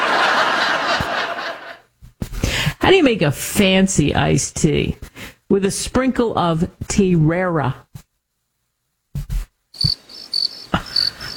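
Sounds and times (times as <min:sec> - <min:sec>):
laughter: 0:00.0 - 0:01.8, 0:10.7 - 0:11.3
speech: 0:02.9 - 0:07.8
brief low thumps: 0:09.2 - 0:10.0
crickets chirping in a high-pitched pulsing rhythm: 0:09.8 - 0:11.3.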